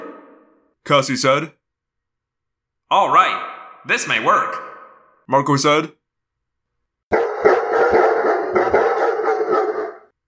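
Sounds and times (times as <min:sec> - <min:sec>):
several dogs barking: 0:00.0 - 0:00.6, 0:07.1 - 0:10.1
speech: 0:00.9 - 0:01.6, 0:02.9 - 0:04.7, 0:05.3 - 0:06.0.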